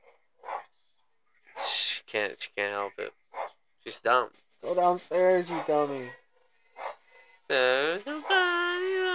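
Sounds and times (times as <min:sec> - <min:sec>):
female dog barking at the wall upstairs: 0:00.0 - 0:00.8, 0:03.3 - 0:03.6, 0:05.4 - 0:06.0, 0:06.8 - 0:07.1
speech: 0:02.1 - 0:03.2, 0:03.8 - 0:06.2, 0:07.5 - 0:09.0.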